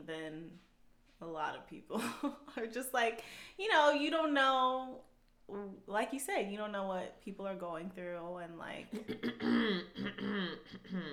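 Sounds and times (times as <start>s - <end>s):
speech: 0.0s - 11.1s
person clearing throat: 8.9s - 11.1s.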